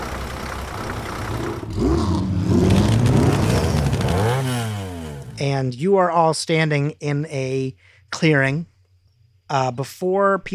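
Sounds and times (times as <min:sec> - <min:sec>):
pickup truck engine revving while pulling away: 0:00.0 - 0:05.4
speech: 0:05.4 - 0:08.7, 0:09.5 - 0:10.5.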